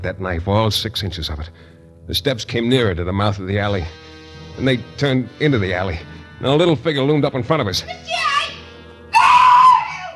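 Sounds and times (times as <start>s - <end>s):
speech: 0.0s - 8.6s
shrill high-pitched screams in an alley: 8.1s - 10.1s.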